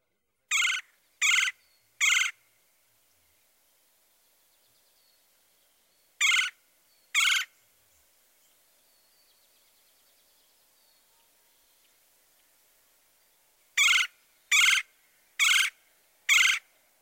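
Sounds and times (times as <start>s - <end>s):
red-bellied woodpecker nasal trill calls: 0.5s - 2.4s, 6.2s - 7.6s, 13.8s - 16.7s.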